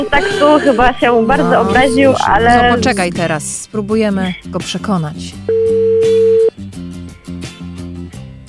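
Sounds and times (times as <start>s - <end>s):
speech: 0.0s - 5.7s
phone ringing tone on an outgoing call: 5.5s - 6.5s.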